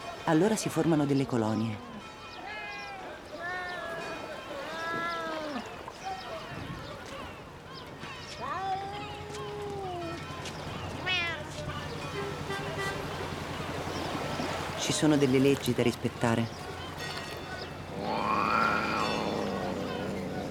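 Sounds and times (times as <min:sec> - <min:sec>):
general outdoor noise: 0:00.0 - 0:20.4
speech: 0:00.3 - 0:01.9, 0:15.0 - 0:16.7
stray cats meowing: 0:11.0 - 0:11.5, 0:17.8 - 0:20.4.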